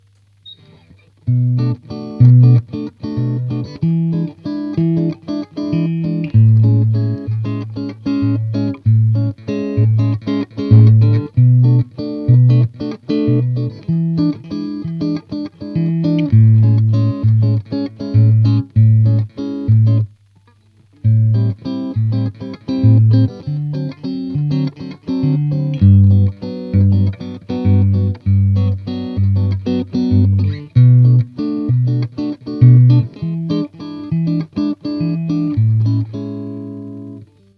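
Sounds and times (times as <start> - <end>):
bossa nova guitar through a 6V6 amplifier: 0.4 - 37.5.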